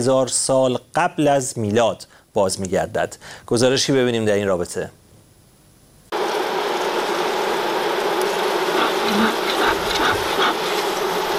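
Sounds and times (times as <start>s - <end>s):
speech: 0.0s - 5.0s
many wild honey bees buzzing in forests of the Republic of Bashkortostan, Russia: 6.1s - 11.3s.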